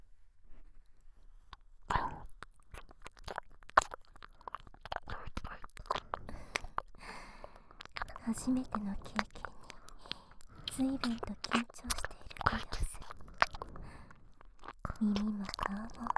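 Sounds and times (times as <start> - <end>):
wet ear licking and mouth sounds: 1.5 - 16.1
speech: 8.3 - 9.4, 10.8 - 12.9, 15.0 - 16.1.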